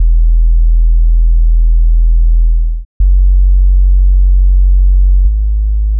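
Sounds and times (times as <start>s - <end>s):
sub bass: 0.0s - 5.9s.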